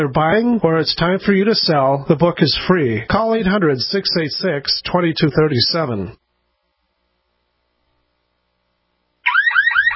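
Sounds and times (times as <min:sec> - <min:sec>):
speech: 0:00.0 - 0:06.2
electronic home security alarm with shrill warbling tone: 0:09.2 - 0:09.9.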